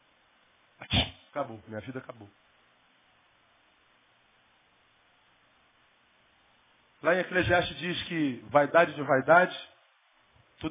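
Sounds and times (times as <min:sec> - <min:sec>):
voice imitating a sneeze: 0:00.8 - 0:01.3
speech: 0:01.4 - 0:02.5, 0:07.0 - 0:09.7.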